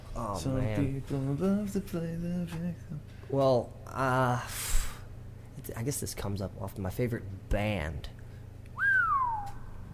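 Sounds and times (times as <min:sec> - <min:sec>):
low hum: 0:00.0 - 0:09.9
speech: 0:00.2 - 0:04.8, 0:05.6 - 0:08.2
whistled note with heavy room reverb: 0:08.8 - 0:09.8.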